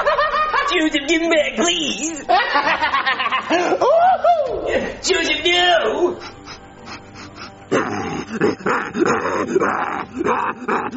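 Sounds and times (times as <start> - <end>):
laughter: 0.0 - 0.9, 2.3 - 5.0, 8.4 - 10.9
speech: 0.7 - 6.4, 7.7 - 10.9
dog snarling and barking aggressively: 7.7 - 10.9.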